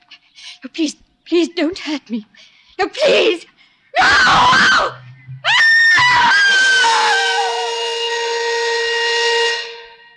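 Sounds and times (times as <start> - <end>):
speech: 0.7 - 5.0
woman screaming: 4.0 - 9.3.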